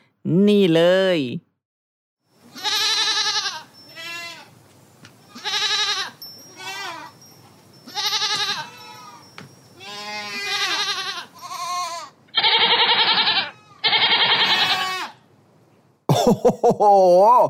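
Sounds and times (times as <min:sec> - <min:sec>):
speech: 0:00.2 - 0:01.5, 0:16.5 - 0:17.4
goat bleating: 0:02.5 - 0:04.5, 0:05.3 - 0:07.2, 0:07.9 - 0:09.2, 0:09.8 - 0:15.2
laughter: 0:16.1 - 0:17.4.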